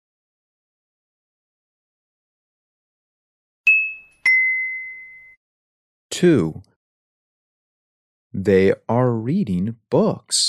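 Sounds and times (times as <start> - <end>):
bell ringing with bright clear dings: 3.7 - 5.4
speech: 6.2 - 6.7, 8.4 - 10.4.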